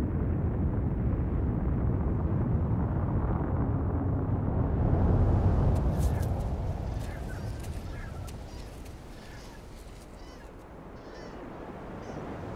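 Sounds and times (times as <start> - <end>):
volcano erupting, throwing ash, cinder and lava bombs: 0.1 - 10.1.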